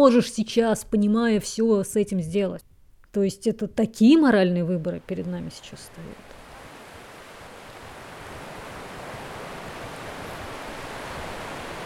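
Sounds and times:
speech: 0:00.0 - 0:06.4
winter sea waves washing ice ashore: 0:05.0 - 0:11.8.

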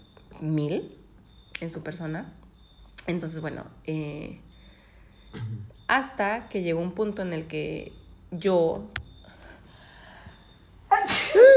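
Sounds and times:
speech: 0:00.4 - 0:01.0, 0:01.6 - 0:02.4, 0:03.1 - 0:04.5, 0:05.3 - 0:09.0
sudden sneeze with a voiced tail: 0:05.4 - 0:05.6, 0:10.9 - 0:11.5.

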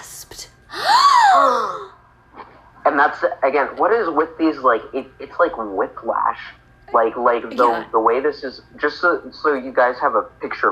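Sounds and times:
loud dramatic voiced gasp: 0:00.7 - 0:02.0
speech: 0:02.8 - 0:10.7.

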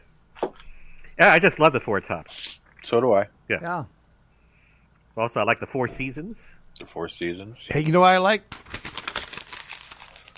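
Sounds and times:
speech: 0:01.2 - 0:04.0, 0:05.2 - 0:08.9
paper crinkling: 0:08.5 - 0:10.3.

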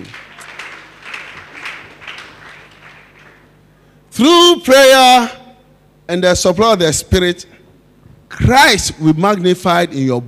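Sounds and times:
audience clapping hands: 0:00.0 - 0:03.8
faint low hum: 0:00.0 - 0:10.2
speech: 0:04.2 - 0:05.4, 0:06.1 - 0:07.5, 0:08.3 - 0:10.2.

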